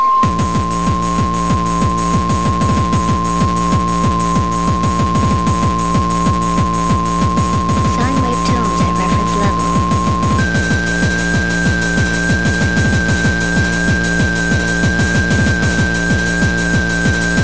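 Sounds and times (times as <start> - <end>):
sine-wave test tone at reference level: 0.0 - 17.4
dense throbbing electronic texture with rhythmic pulses: 0.2 - 17.4.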